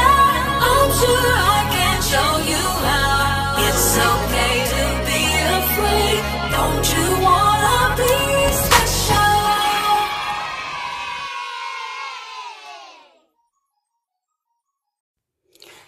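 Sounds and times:
loud hip-hop song with heavy shifting bassline and dense layered vocals: 0.0s - 11.2s.

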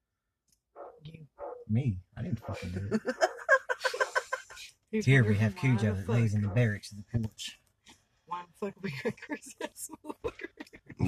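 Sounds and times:
dog barking: 0.8s - 1.7s, 2.3s - 3.5s
speech: 1.0s - 3.3s, 4.9s - 7.6s, 8.4s - 11.0s
laughter: 2.3s - 4.7s, 8.8s - 11.0s.

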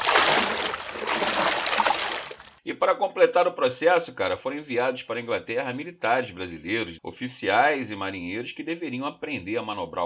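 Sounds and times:
water splashing and sloshing: 0.0s - 2.6s
speech: 2.8s - 10.0s.

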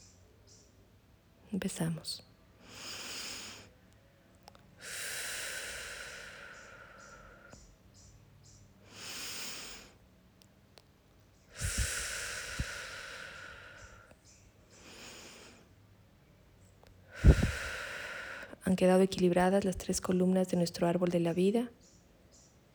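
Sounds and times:
speech: 1.5s - 2.3s, 18.8s - 21.8s
slow deep breaths in and out: 2.6s - 3.8s, 4.8s - 10.1s, 11.4s - 16.0s, 17.0s - 18.8s.

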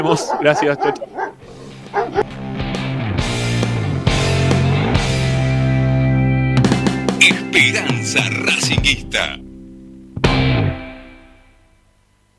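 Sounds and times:
several dogs barking and yipping in a house: 0.0s - 2.3s
speech: 0.0s - 2.4s, 7.2s - 9.4s
sustained tonal music bed: 0.0s - 11.9s.

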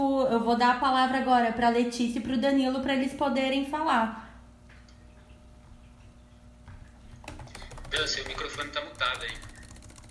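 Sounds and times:
low steady hum: 0.0s - 10.0s
speech: 0.3s - 4.2s, 8.0s - 9.5s
rapid clicking of keys on a computer keyboard: 7.2s - 10.0s.

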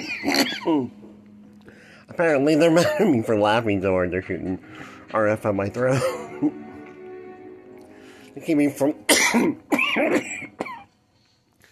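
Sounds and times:
person coughing hard: 0.0s - 0.9s, 2.8s - 3.3s, 9.1s - 10.9s
speech: 0.2s - 1.0s, 2.1s - 6.6s, 8.4s - 10.7s.

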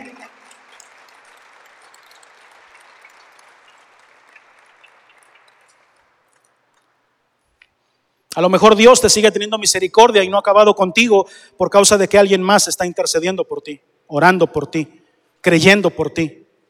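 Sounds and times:
audience applauding: 0.0s - 7.0s
speech: 8.4s - 16.4s.

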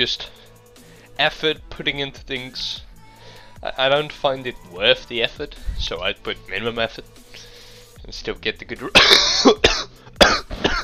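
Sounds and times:
speech: 0.0s - 0.4s, 1.2s - 2.9s, 3.6s - 9.6s
harsh throaty coughs: 8.9s - 10.8s.

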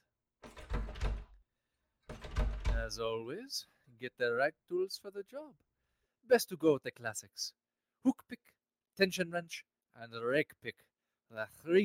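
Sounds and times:
apartment door scraping and rattling: 0.4s - 1.4s, 2.1s - 3.0s
speech: 2.8s - 5.7s, 6.3s - 11.8s.

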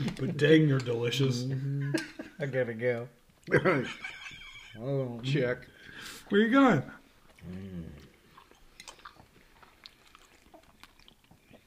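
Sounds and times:
speech: 0.1s - 8.1s
laughter: 1.7s - 2.4s, 3.5s - 4.8s
soft wet chewing of a mouthful of greens and crab: 7.0s - 11.6s
mouth clicks and smacks: 7.2s - 11.6s.

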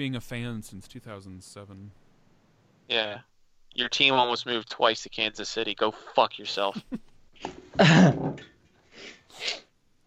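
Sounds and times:
speech: 0.0s - 2.0s, 2.9s - 9.6s
person sniffling into a microphone: 8.9s - 9.7s.

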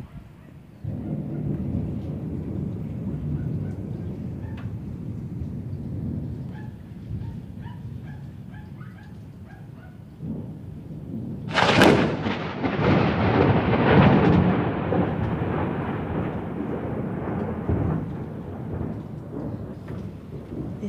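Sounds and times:
dog barking: 0.0s - 1.6s, 3.2s - 3.8s, 6.5s - 10.0s
faint rain: 0.0s - 20.8s
thunder rumbling: 0.0s - 20.8s
thunder crack: 0.8s - 7.7s, 10.2s - 20.8s.

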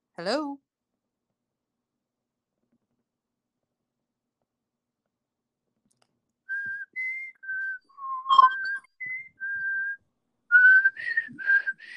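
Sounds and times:
speech: 0.2s - 0.6s
person whistling: 6.5s - 11.9s.

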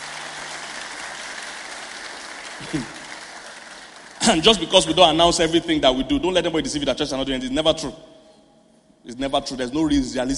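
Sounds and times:
audience clapping: 0.0s - 5.6s
speech: 2.6s - 3.0s, 4.3s - 8.1s, 9.0s - 10.3s.

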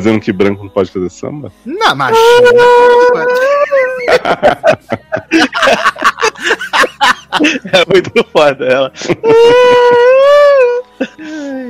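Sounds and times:
speech: 0.0s - 11.6s
person screaming loudly at a high pitch: 2.1s - 4.2s, 9.2s - 10.8s
shorter lower wailing cry: 2.1s - 7.1s, 9.0s - 11.6s
laughter: 2.8s - 11.4s
brief gasp: 11.0s - 11.6s.

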